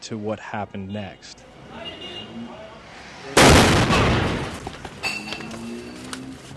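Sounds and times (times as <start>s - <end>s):
speech: 0.0s - 2.6s
armored BMW car exploding in a pillar of flame: 3.3s - 5.0s
rumbling debris noise: 3.4s - 5.0s.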